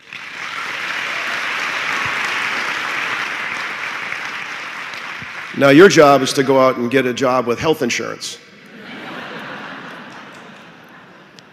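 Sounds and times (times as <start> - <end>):
large crowd applauding: 0.0 - 8.1, 9.2 - 11.5
speech: 5.6 - 8.4
laughter: 8.5 - 11.5.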